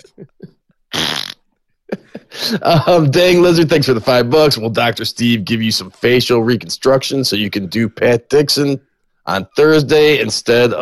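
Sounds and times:
loud wet fart: 0.9 - 1.5
speech: 2.4 - 10.8.

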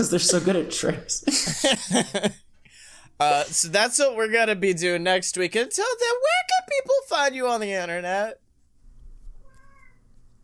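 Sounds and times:
speech: 0.0 - 2.4, 3.2 - 8.4
laughter: 1.2 - 2.4
cat meowing: 9.4 - 10.0.

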